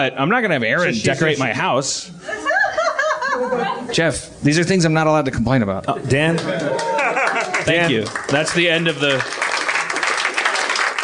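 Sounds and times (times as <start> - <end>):
speech: 0.0 - 2.8, 3.4 - 7.0, 7.6 - 9.4
laughter: 2.2 - 3.9, 6.4 - 8.0
studio audience applause: 6.2 - 11.0.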